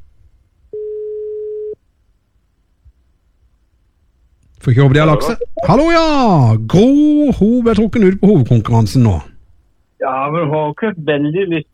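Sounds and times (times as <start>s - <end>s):
steady telephone ringback tone over a quiet line: 0.8s - 1.8s
speech: 4.6s - 9.3s, 10.0s - 11.7s.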